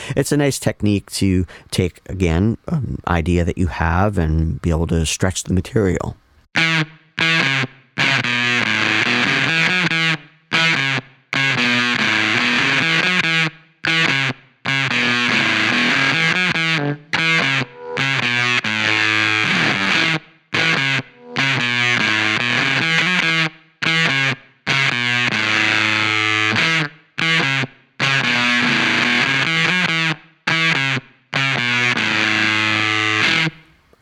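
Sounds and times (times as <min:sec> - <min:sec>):
speech: 0:00.2 - 0:07.8
electric guitar through Rush Pepbox fuzz pedal playing sustained chords: 0:06.6 - 0:33.7.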